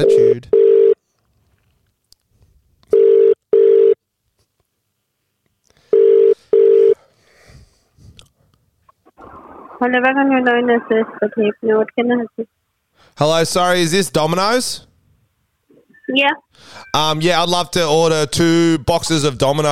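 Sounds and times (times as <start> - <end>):
telephone ringback tone of a call to a pizza shop in Perth: 0.0 - 1.0, 3.0 - 4.0, 5.9 - 7.0
person talking on the telephone line: 9.8 - 12.5
speech: 9.8 - 12.6, 13.2 - 14.9, 16.1 - 19.7.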